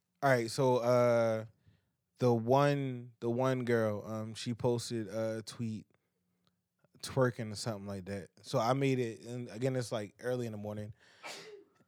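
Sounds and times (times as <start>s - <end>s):
speech: 0.2s - 1.6s, 2.2s - 5.9s, 7.0s - 11.5s
sneeze: 11.2s - 11.6s.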